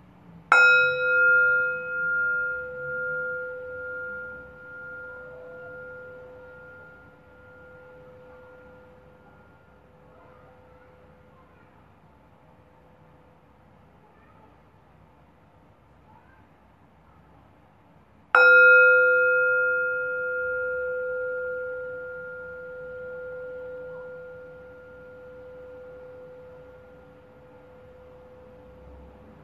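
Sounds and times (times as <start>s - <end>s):
meditation bell struck and ringing: 0.5s - 11.4s, 18.3s - 29.4s.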